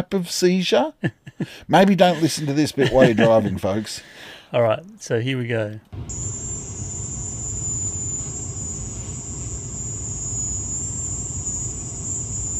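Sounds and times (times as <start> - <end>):
speech: 0.0 - 6.3
laughter: 1.0 - 4.0
dense low rumbling noise: 6.0 - 12.5
high-pitched piercing whine reported by Americans in Havana: 6.0 - 12.5.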